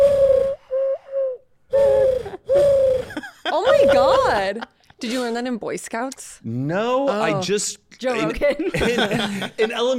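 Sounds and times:
person imitating a bird call by blowing into cupped hands: 0:00.0 - 0:03.1
laughter: 0:03.1 - 0:04.8, 0:08.3 - 0:09.9
speech: 0:03.6 - 0:09.9.

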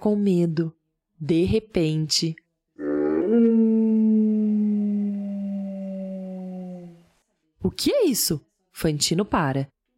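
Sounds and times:
speech: 0:00.0 - 0:02.4, 0:07.6 - 0:09.8
wolf howling: 0:02.8 - 0:07.1.

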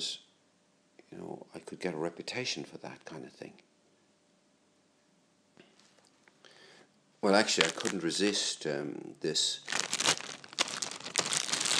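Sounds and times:
speech: 0:00.0 - 0:00.2, 0:01.1 - 0:03.7, 0:07.2 - 0:09.8
plastic sandwich bag crinkling pulled over a hand: 0:07.3 - 0:08.5, 0:09.6 - 0:11.7.

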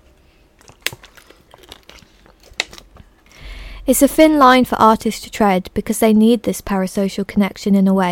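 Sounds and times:
person drinking water: 0:00.5 - 0:03.7
speech: 0:03.9 - 0:08.0.

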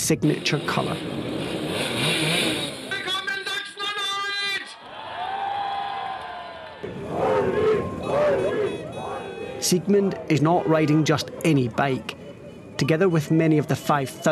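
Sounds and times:
small Simson Schwalbe moped engines revving in Quedlinburg: 0:00.0 - 0:03.3, 0:06.8 - 0:14.3
speech: 0:00.1 - 0:02.3, 0:09.6 - 0:12.2, 0:12.8 - 0:14.3
noisy crowd cheering at a political motorcade in Quedlinburg: 0:03.8 - 0:12.3.

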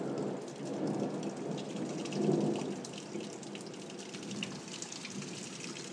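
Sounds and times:
steady dense heavy rain: 0:00.0 - 0:05.9.

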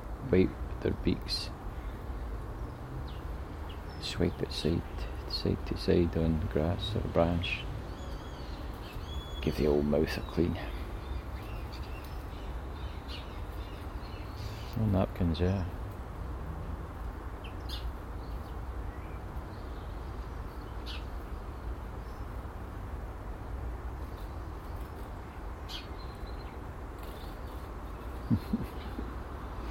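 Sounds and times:
speech: 0:00.3 - 0:01.6, 0:04.0 - 0:07.7, 0:09.4 - 0:10.7, 0:14.8 - 0:15.8
sparrows chirping at garden feeders: 0:00.3 - 0:29.6.

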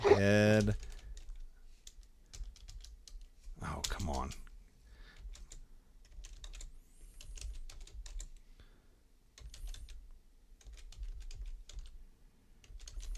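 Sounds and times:
person muttering: 0:00.0 - 0:00.8
speech: 0:00.2 - 0:00.9
typing on a crusty computer keyboard: 0:00.6 - 0:04.5, 0:05.1 - 0:08.4, 0:09.4 - 0:10.0, 0:10.6 - 0:12.0, 0:12.6 - 0:13.1.

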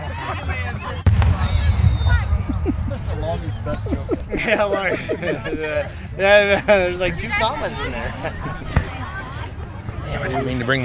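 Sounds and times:
crowd chatter at a firework show: 0:00.0 - 0:10.8
fireworks exploding at a firework show: 0:01.0 - 0:05.5
laughter: 0:02.3 - 0:10.8
speech: 0:03.4 - 0:08.6, 0:10.2 - 0:10.8.

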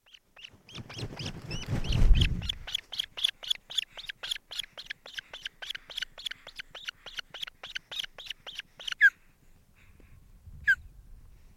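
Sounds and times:
mother bird scolding angrily at her nest: 0:00.0 - 0:09.1.

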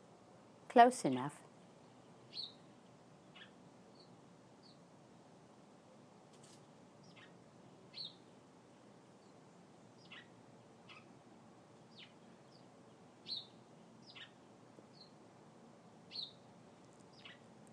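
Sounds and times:
steady outdoor hiss: 0:00.0 - 0:17.7
speech: 0:00.7 - 0:01.4
short high bird chirps near a nest: 0:02.3 - 0:02.6, 0:07.9 - 0:08.2, 0:10.0 - 0:10.3, 0:13.3 - 0:14.4, 0:16.1 - 0:16.4, 0:17.1 - 0:17.4.

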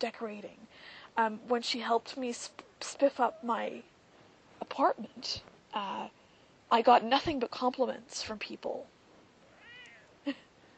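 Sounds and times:
speech: 0:00.0 - 0:03.9, 0:04.6 - 0:08.9, 0:10.3 - 0:10.5
pet cat meowing: 0:09.5 - 0:10.1.

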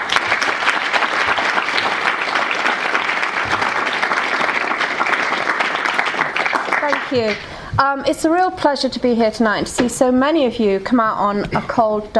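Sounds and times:
large audience applauding: 0:00.0 - 0:07.5
speech: 0:07.1 - 0:12.1.

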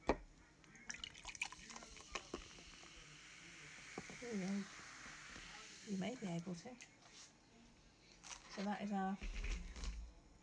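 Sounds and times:
sparkling wine being poured into glasses: 0:00.9 - 0:06.5
speech: 0:04.2 - 0:04.8, 0:05.9 - 0:07.0, 0:08.6 - 0:09.4.

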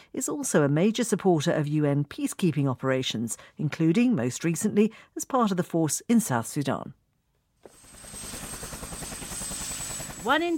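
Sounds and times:
speech: 0:00.1 - 0:07.0, 0:10.2 - 0:10.5
Bangladeshi Air Force helicopter rotor thumping: 0:07.6 - 0:10.5
thin high helicopter turbine whine: 0:07.7 - 0:10.5.

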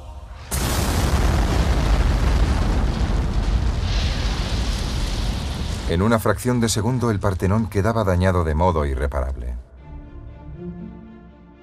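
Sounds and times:
low rumble: 0:00.0 - 0:07.9
gunpowder magazine explosion: 0:00.1 - 0:07.7
roar of blast and debris: 0:00.3 - 0:07.6
speech: 0:05.9 - 0:09.7.

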